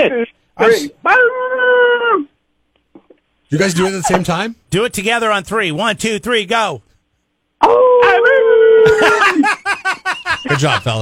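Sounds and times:
speech: 0.0 - 1.6, 3.5 - 6.9, 7.6 - 7.8, 8.8 - 9.6, 10.5 - 11.0
man imitating a wolf howl: 0.0 - 2.3, 7.6 - 9.2
laughter: 8.8 - 11.0.

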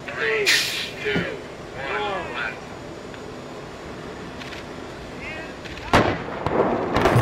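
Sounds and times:
rumbling bus: 0.0 - 6.0
building demolition implosion blasts: 5.7 - 7.2.

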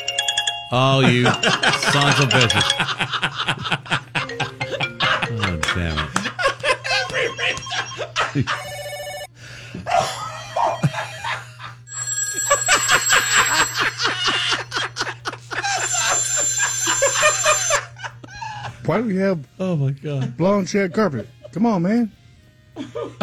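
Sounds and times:
phone ringtones with bright electronic melodies and chirpy trills: 0.0 - 3.1, 6.9 - 9.3, 10.6 - 11.1, 11.9 - 14.7, 15.7 - 17.9
speech: 0.7 - 4.0, 7.8 - 8.8, 18.9 - 22.2
laughter: 0.8 - 9.0, 9.7 - 18.9, 20.1 - 21.7, 22.8 - 23.2.

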